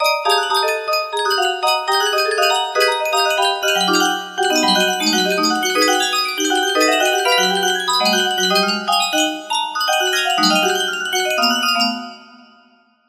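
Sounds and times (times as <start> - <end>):
stringed music box melody: 0.0 - 12.6.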